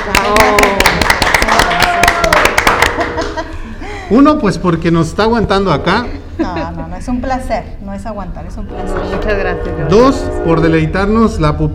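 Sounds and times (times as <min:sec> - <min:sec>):
speech: 0:00.0 - 0:01.2, 0:04.1 - 0:11.7
small group applauding with quick irregular claps: 0:00.0 - 0:03.6
people laughing: 0:02.7 - 0:04.2.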